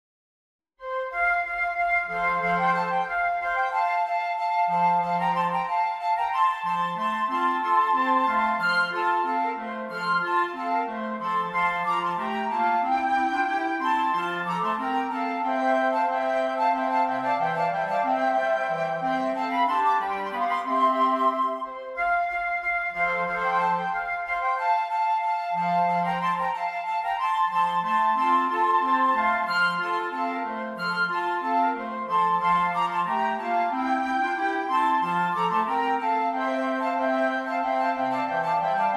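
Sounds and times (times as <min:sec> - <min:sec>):
flute quartet playing: 0:00.8 - 0:38.9.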